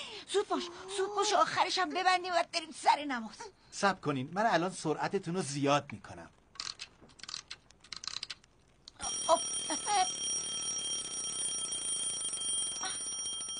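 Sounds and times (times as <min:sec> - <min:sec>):
speech: 0:00.3 - 0:06.4
alarm ringing: 0:09.0 - 0:13.5.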